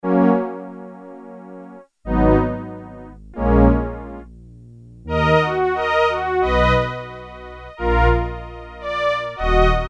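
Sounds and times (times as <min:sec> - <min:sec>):
Korg Poly-61M synthesizer: 0:00.0 - 0:04.4, 0:05.0 - 0:09.8
Sforzando strings: 0:02.0 - 0:09.8.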